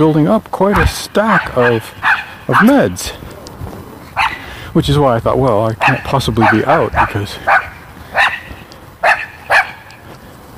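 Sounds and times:
speech: 0.0 - 3.3, 4.8 - 7.7
dog barking: 0.8 - 2.9, 4.2 - 4.5, 5.8 - 9.9.

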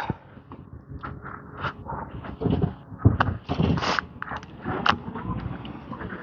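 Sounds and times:
garbage truck low engine rumble: 0.0 - 6.2.

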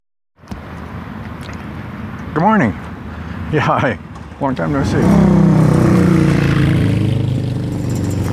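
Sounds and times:
speech: 2.4 - 2.9, 3.5 - 5.8
loud motorcycle engine rumbling past: 4.7 - 8.3.

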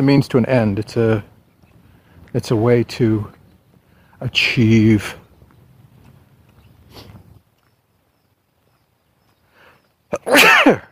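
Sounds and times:
speech: 0.0 - 1.3, 2.3 - 3.4, 4.2 - 5.2, 10.1 - 10.9
person sneezing: 10.1 - 10.9.

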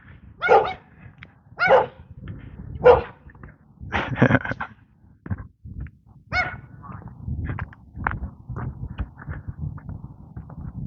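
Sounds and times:
low rumble: 0.0 - 10.8
dog yipping: 0.4 - 0.8, 1.6 - 2.0, 2.8 - 3.2, 6.4 - 6.6
dog barking: 0.4 - 0.9, 1.6 - 2.1, 2.8 - 3.2, 6.3 - 6.7.

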